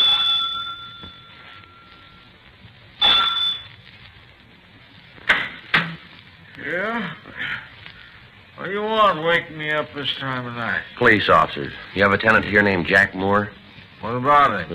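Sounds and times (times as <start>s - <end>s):
electric front doorbell chime of a boarding house: 0.0s - 2.2s, 3.0s - 3.7s
speech: 8.7s - 14.7s.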